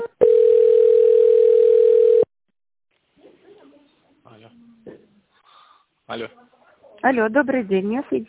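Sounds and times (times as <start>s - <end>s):
telephone ringing tone while a call is transferred: 0.2s - 2.3s
speech: 7.1s - 8.2s.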